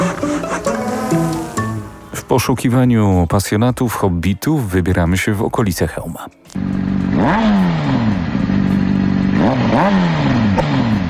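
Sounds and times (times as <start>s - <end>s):
motorcycle engine idling and revving: 0.0s - 2.1s, 6.6s - 11.0s
speech: 2.3s - 7.7s.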